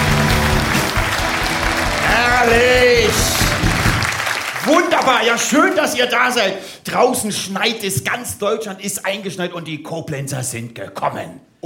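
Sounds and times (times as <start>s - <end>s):
audience applause at a live show: 0.0s - 6.0s
speech: 2.4s - 3.3s, 4.7s - 11.6s.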